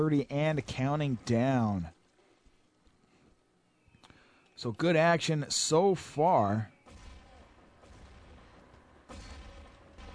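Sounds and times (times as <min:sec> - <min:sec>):
speech: 0:00.0 - 0:02.0, 0:04.6 - 0:06.7
grenade explosions in a multiplayer shooter video game: 0:06.7 - 0:10.1.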